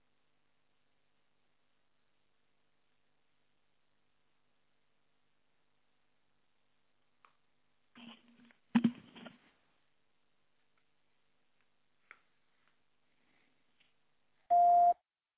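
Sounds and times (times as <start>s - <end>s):
phone dialing clicks and tone bursts: 14.5s - 15.0s.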